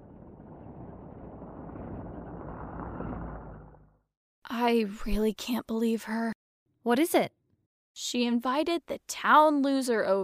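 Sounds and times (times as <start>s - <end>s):
deep throaty car engine rumbling outside the window of a house: 0.0s - 4.0s
speech: 4.7s - 7.4s, 8.0s - 10.2s.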